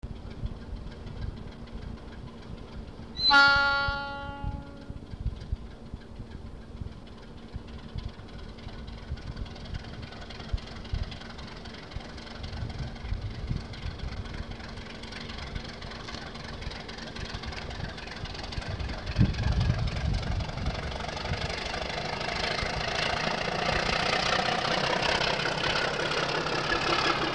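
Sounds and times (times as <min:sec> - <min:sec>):
narrow gauge ALCO diesel locomotive leaving a station with a train: 0:00.1 - 0:27.3.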